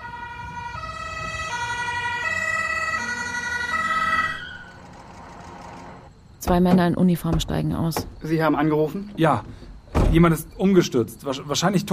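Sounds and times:
two-tone ambulance siren wailing: 0.0s - 6.1s
faint road noise: 0.0s - 11.9s
speech: 6.5s - 11.9s.

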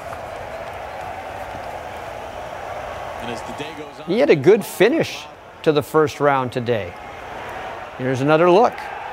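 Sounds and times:
golf fans shouting: 0.0s - 9.1s
large outdoor crowd of golf fans cheering a birdie at the 16th hole: 0.0s - 9.1s
speech: 3.2s - 7.1s, 8.0s - 8.9s.

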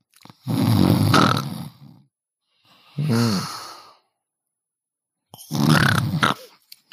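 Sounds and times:
person imitating a woman's loud snoring: 0.3s - 2.1s, 3.0s - 4.0s, 5.4s - 6.9s.

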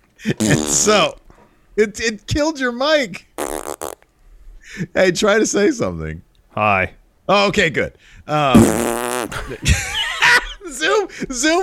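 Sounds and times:
speech: 0.2s - 1.2s, 1.8s - 3.3s, 4.7s - 9.8s, 10.7s - 11.6s
raspberry-style fart noise blown with the lips: 0.4s - 0.9s, 3.4s - 4.0s, 8.5s - 9.4s
laughter: 9.3s - 11.1s.

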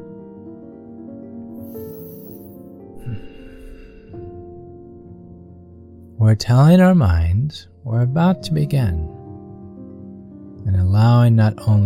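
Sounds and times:
sustained calm musical drone: 0.0s - 11.8s
gentle breath in and out during a guided meditation: 1.6s - 4.4s
speech: 6.2s - 9.2s, 10.9s - 11.8s.

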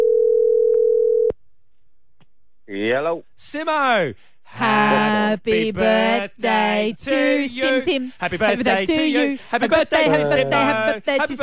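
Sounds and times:
outgoing phone call electronic ringing tone: 0.0s - 1.3s
speech: 2.9s - 11.4s
laughter: 7.4s - 11.4s.

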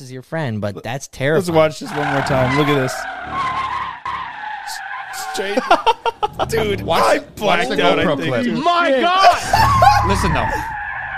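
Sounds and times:
speech: 0.0s - 3.6s, 5.4s - 10.8s
car tire squeal while skidding to a stop: 1.8s - 6.1s, 9.4s - 11.1s
laughter: 5.2s - 10.7s.

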